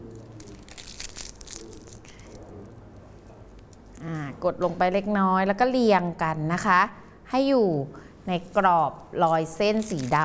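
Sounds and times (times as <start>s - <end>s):
paper being crumpled by hand into small balls: 0.1s - 2.4s, 9.7s - 10.2s
speech: 4.0s - 10.2s.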